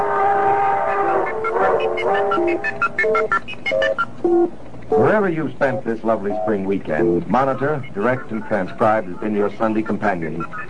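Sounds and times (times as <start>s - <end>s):
train whistle sounding a long steady chord: 0.0s - 2.8s
speech: 1.8s - 10.6s.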